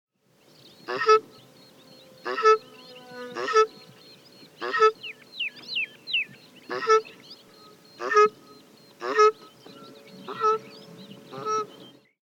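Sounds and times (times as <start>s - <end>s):
South African shelduck Tadorna cana giving nasal honking calls: 0.8s - 1.4s, 2.2s - 3.9s, 4.6s - 5.2s, 6.6s - 11.8s.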